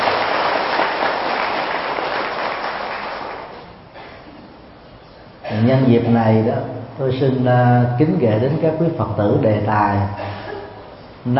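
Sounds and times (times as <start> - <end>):
large crowd applauding: 0.0 - 3.8
speech: 5.6 - 10.3.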